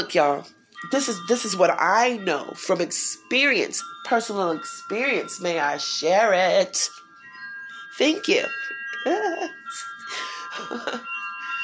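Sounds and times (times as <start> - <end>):
speech: 0.0 - 7.0, 8.0 - 11.1
wind chimes ringing: 0.0 - 11.6.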